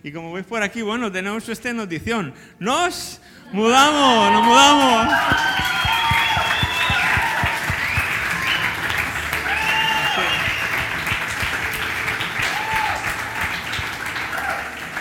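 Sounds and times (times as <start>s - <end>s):
speech: 0.0s - 6.1s
scattered voices and high cheers: 3.6s - 11.0s, 12.4s - 14.9s
audience applauding: 4.2s - 14.9s.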